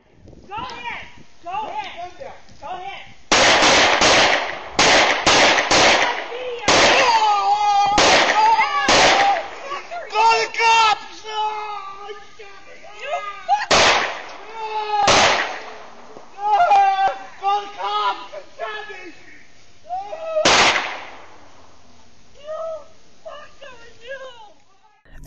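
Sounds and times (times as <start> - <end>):
gunshots in a shooting outside a home: 3.3 - 7.3, 7.9 - 9.5, 13.7 - 15.9, 20.4 - 21.4
people shouting during a shooting after an argument: 5.9 - 19.2, 19.8 - 20.9, 22.4 - 25.1.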